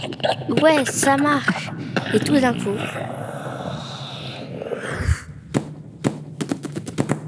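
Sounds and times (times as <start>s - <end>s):
speech: 0.0s - 3.2s
children making whooshing vocal swoop imitating a crashing spaceship: 4.7s - 5.5s.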